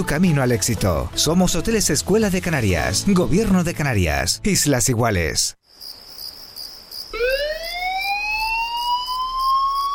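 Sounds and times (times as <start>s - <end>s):
speech: 0.0s - 5.6s
fire brigade emergency alert alarm with steady high pulsing electronic tone: 7.1s - 9.9s.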